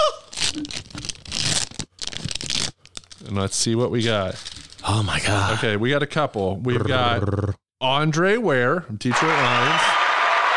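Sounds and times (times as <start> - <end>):
foil pack of football trading cards being torn open: 0.3 - 3.2
speech: 3.3 - 10.0.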